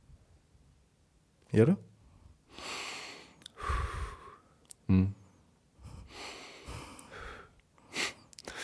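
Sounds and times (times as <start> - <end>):
speech: 1.5 - 1.9
deep airy breaths drawn in and let out: 2.0 - 4.6, 5.2 - 8.6.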